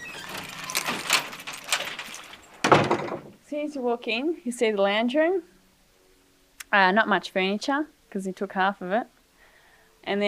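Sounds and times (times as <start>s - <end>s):
front door of a home unlatched and pulled open: 0.0s - 3.4s
keys jangling in metallic bursts: 0.3s - 2.5s
speech: 3.5s - 5.6s, 6.7s - 9.1s, 10.0s - 10.2s.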